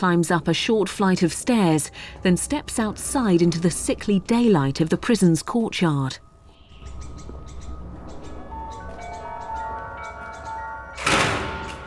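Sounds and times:
speech: 0.0s - 6.3s
heavy prison door shutting: 10.9s - 11.8s.

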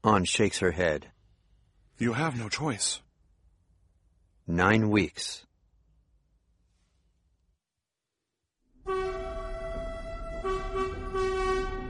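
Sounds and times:
speech: 0.0s - 1.1s, 2.0s - 3.0s, 4.5s - 5.5s
train horn heard from on board a train: 8.8s - 11.8s.

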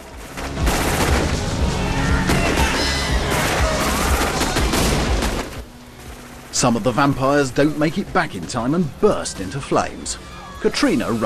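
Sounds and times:
gunfire from hunters spraying bullets: 0.0s - 5.6s
speech: 6.6s - 11.2s.

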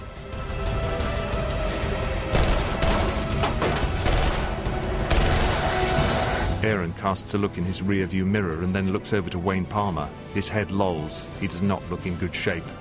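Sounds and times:
dense continuous roar: 0.0s - 6.7s
gunfire at a retreating SUV: 2.3s - 6.0s
speech: 6.6s - 12.7s.

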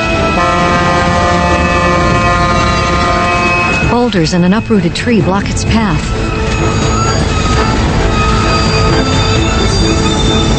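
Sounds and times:
heavy steady rumble of rolling train cars: 0.0s - 10.5s
train brakes grinding and squealing while slowing to a stop: 1.5s - 4.8s, 6.1s - 10.5s
speech: 4.1s - 7.3s.

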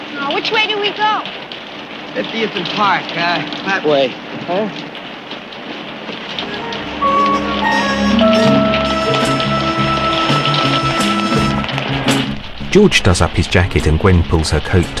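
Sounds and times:
rain falling on a deserted city street at night: 0.0s - 14.9s
speech: 0.2s - 1.5s, 2.1s - 5.0s, 12.7s - 14.9s
faint tonal sounds: 6.4s - 10.4s.

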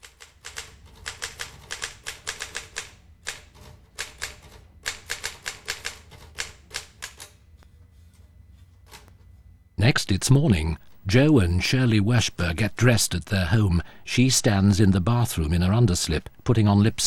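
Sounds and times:
typewriter keys clacking: 0.0s - 7.3s
low room hum: 0.0s - 17.0s
speech: 9.9s - 17.0s.

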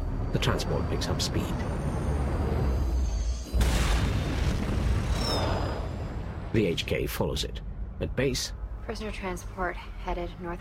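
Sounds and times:
low rumble: 0.0s - 10.4s
speech: 0.3s - 1.8s, 6.6s - 10.5s
plane exploding as its pilot ejects: 3.5s - 6.8s.

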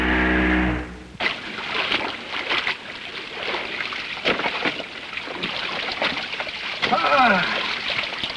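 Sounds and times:
low droning tone: 0.0s - 1.2s
oars of a rowboat splashing in water: 1.2s - 8.3s.

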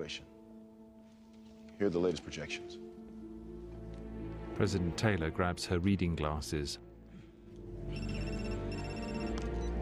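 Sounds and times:
speech: 0.0s - 0.3s, 1.8s - 2.9s, 4.6s - 6.8s
phone ringtone chirping: 7.9s - 9.7s.

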